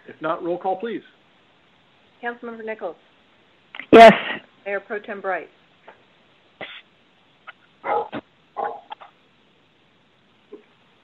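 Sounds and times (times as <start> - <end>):
speech: 0.2 - 1.2, 2.2 - 3.1, 3.9 - 5.6
dog barking: 7.8 - 9.1.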